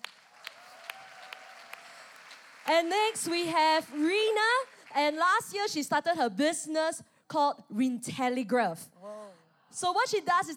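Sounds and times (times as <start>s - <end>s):
audience applause: 0.0s - 5.3s
speech: 2.7s - 10.5s.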